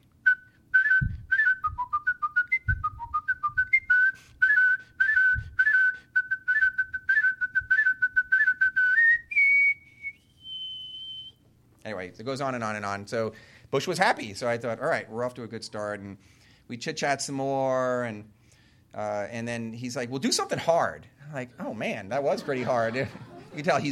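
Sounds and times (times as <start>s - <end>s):
person whistling a brisk classical overture tune: 0.2s - 11.4s
speech: 12.1s - 23.8s
laughter: 22.2s - 23.8s.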